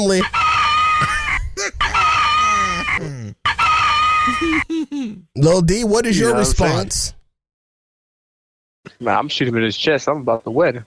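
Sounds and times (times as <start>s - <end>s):
speech: 0.0s - 0.4s, 5.4s - 7.2s, 8.9s - 10.8s
rooster clucking squawk: 0.1s - 4.6s
rooster crowing: 0.2s - 1.2s, 1.9s - 4.4s.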